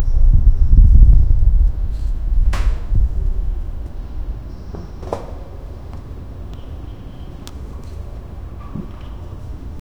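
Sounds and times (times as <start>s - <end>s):
tavern ambience: 0.0s - 5.0s.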